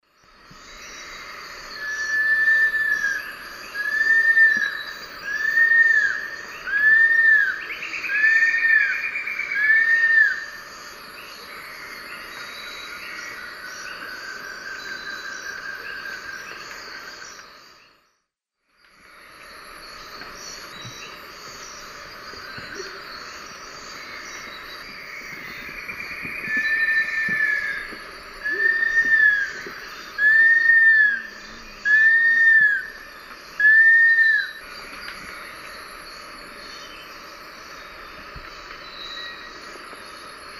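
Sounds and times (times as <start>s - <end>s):
Nasica longirostris song in the Eastern Lowlands of South America: 0.0s - 18.2s, 18.8s - 40.5s.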